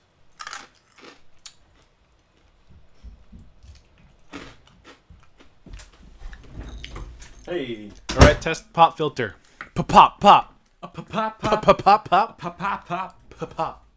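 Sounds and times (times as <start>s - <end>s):
dry breakfast cereal being chewed: 0.3s - 2.6s, 3.7s - 5.9s
speech: 7.5s - 13.8s
laughter: 10.8s - 13.9s.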